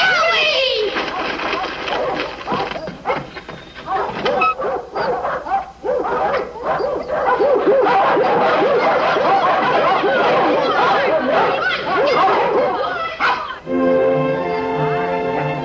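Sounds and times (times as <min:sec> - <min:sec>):
voices chattering: 0:00.0 - 0:05.0, 0:05.7 - 0:15.6
thoroughbred dog barking and yipping: 0:01.0 - 0:13.6
bursts of laughter: 0:07.8 - 0:13.6.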